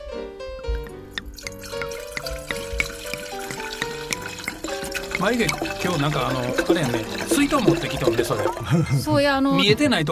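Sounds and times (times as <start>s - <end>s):
liquid poured into a glass in a steady stream: 0.8s - 8.8s
bubbly gurgles and small splashes of poured liquid: 1.3s - 8.8s
speech: 5.2s - 10.1s.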